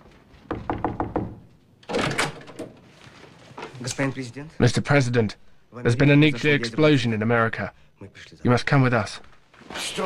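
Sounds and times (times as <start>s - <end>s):
dull knocks and thuds: 0.4s - 2.7s
bedroom door rattling and scraping as it opens: 0.5s - 3.8s
speech: 3.9s - 10.0s.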